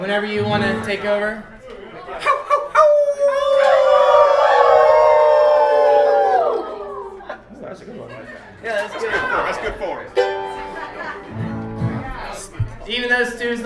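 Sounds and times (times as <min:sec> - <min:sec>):
speech: 0:00.0 - 0:02.4, 0:08.6 - 0:10.2, 0:12.9 - 0:13.6
audience chatter: 0:00.0 - 0:05.6, 0:06.2 - 0:13.6
laughter: 0:01.8 - 0:03.2, 0:06.7 - 0:12.6
audience at a live band performance howling together like wolves: 0:02.8 - 0:07.2.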